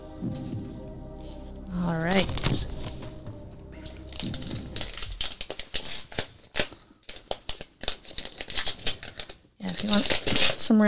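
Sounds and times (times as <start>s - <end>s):
paper security envelopes being handled and crinkled: 2.1s - 3.2s, 3.8s - 10.7s.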